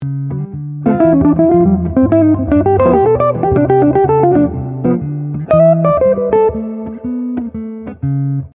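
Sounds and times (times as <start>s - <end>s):
jazz fusion lick: 0.8s - 7.4s.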